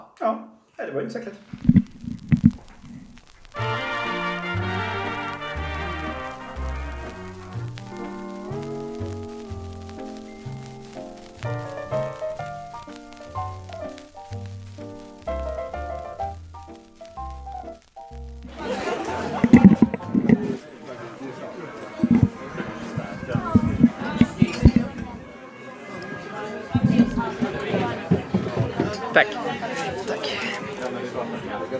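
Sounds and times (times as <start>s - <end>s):
speech: 0.2s - 1.8s
low steady musical tones: 3.1s - 27.4s
bar crowd murmuring and laughing: 18.4s - 31.7s.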